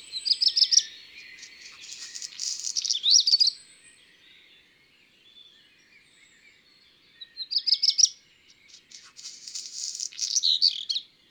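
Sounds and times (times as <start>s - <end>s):
black redstart singing: 0.0s - 11.2s.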